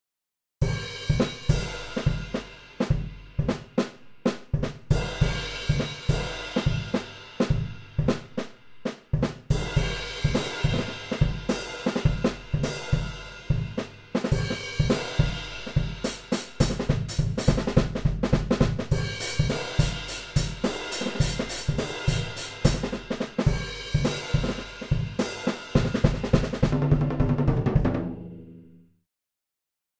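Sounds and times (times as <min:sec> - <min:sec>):
full drum kit: 0:00.6 - 0:28.8.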